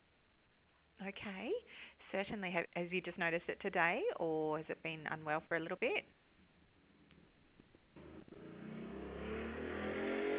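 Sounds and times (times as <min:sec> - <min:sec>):
speech: 0:01.0 - 0:06.2
motorbike engine revving: 0:08.0 - 0:10.3.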